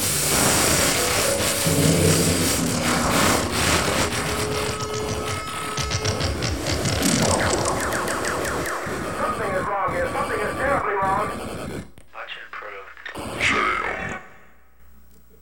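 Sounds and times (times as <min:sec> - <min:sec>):
television interference static hiss: 0:00.0 - 0:06.2, 0:06.8 - 0:14.2
pulsing buzzes: 0:00.0 - 0:12.0
whining, squealing tones: 0:00.0 - 0:12.0.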